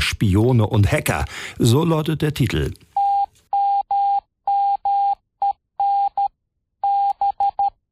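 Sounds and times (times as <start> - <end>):
speech: 0.1 - 2.9
electronic tone keyed in Morse code: 3.0 - 7.9.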